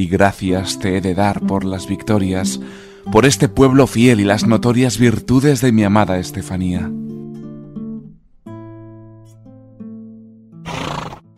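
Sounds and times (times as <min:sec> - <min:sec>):
speech: 0:00.0 - 0:07.0
horse snorting: 0:10.6 - 0:11.3
horse whinnying: 0:10.6 - 0:11.3.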